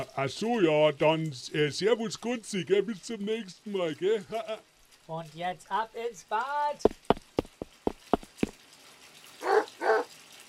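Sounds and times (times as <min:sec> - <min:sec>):
speech: 0:00.1 - 0:07.1
dog in a bathtub barking: 0:09.4 - 0:10.1.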